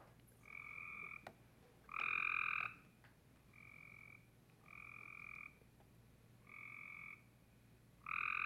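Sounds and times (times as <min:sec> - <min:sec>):
Cope's gray tree frogs trilling in harsh rapid-pulsed calls: 0:00.4 - 0:05.7, 0:06.4 - 0:07.4, 0:08.0 - 0:08.4.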